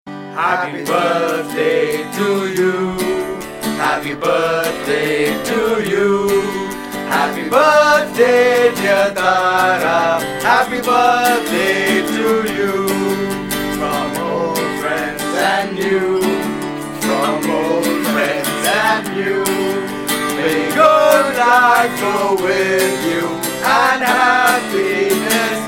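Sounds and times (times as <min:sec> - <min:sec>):
guitar melody: 0:00.1 - 0:25.6.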